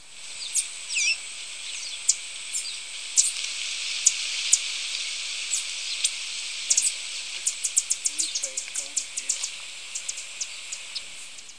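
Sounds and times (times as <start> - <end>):
golden-masked tanager Tangara larvata calling: 0.3 - 11.5.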